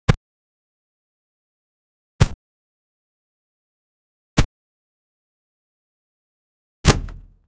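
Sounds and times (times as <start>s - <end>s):
punch hitting a body: 6.9s - 7.4s.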